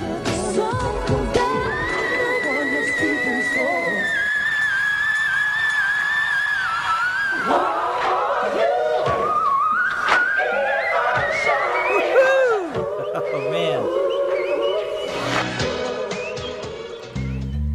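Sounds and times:
loud musical backing: 0.0 - 11.9, 12.7 - 17.7
female singer hitting extremely high whistle-register notes: 1.5 - 7.5, 9.3 - 12.8.

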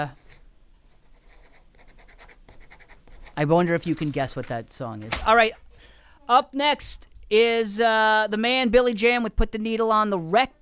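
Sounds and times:
speech: 0.0 - 0.2, 3.4 - 5.6, 6.3 - 10.6
pen writing a grade on paper: 1.1 - 3.4.

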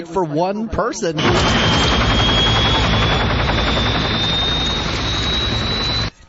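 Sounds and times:
speech: 0.0 - 2.3
helicopter rotors flying overhead: 1.2 - 6.1.

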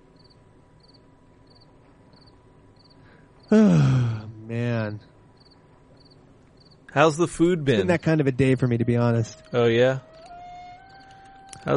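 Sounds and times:
soft hiss: 0.0 - 11.7
crickets chirping: 0.2 - 4.2, 5.3 - 6.9, 10.2 - 11.5
speech: 7.0 - 10.1.

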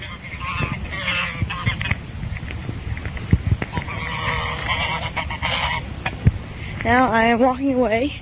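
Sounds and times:
geese honking: 0.0 - 2.0, 3.7 - 6.2
speech: 6.8 - 8.2.

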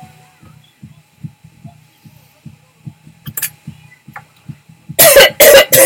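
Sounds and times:
person coughing dry harsh coughs: 5.0 - 5.8.

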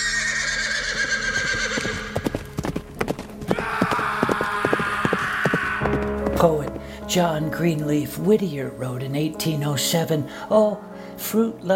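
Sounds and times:
horse neighing: 0.0 - 2.3, 3.5 - 6.0
hooves clip-clopping: 1.2 - 7.6
speech: 6.4 - 11.7.

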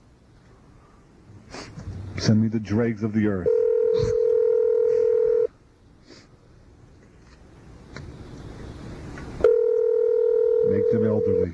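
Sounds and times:
speech: 1.5 - 4.1
touch-tone telephone number being dialed: 3.5 - 5.5, 9.5 - 10.7.

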